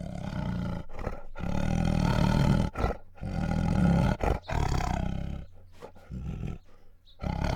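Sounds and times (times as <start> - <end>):
female Bengal tiger growling and snarling: 0.0 - 7.5.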